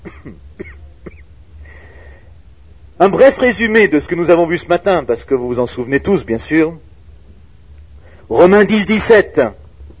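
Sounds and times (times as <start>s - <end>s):
person coughing: 0.0s - 1.3s
raspy throat clearing: 0.0s - 1.3s
speech: 3.0s - 6.9s, 8.3s - 9.6s.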